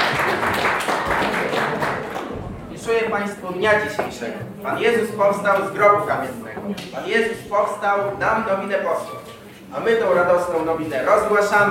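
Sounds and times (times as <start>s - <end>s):
audience applause at a stage event: 0.0s - 2.4s
speech: 3.1s - 11.7s.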